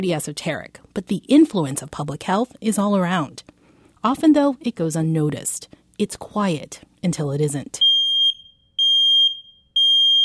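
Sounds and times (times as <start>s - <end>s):
speech: 0.0s - 7.9s
home smoke detector alarm beeping: 7.8s - 10.2s.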